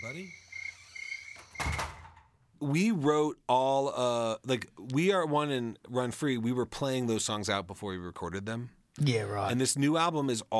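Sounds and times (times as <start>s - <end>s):
speech: 0.0s - 0.4s, 2.6s - 10.5s
high chirping from frogs or insects outside: 0.0s - 1.8s
door swinging shut with a thunk: 1.4s - 2.3s.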